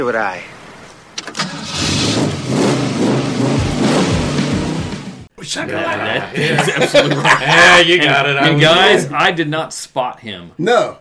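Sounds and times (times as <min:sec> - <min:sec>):
speech: 0:00.0 - 0:00.6, 0:05.4 - 0:10.9
car engine revving: 0:01.3 - 0:05.3
laughter: 0:05.4 - 0:09.1.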